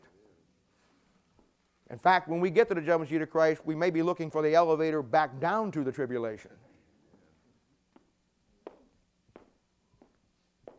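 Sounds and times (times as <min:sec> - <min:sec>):
speech: 0:01.9 - 0:06.7
footsteps on a hard hollow-sounding stage floor: 0:07.9 - 0:10.7.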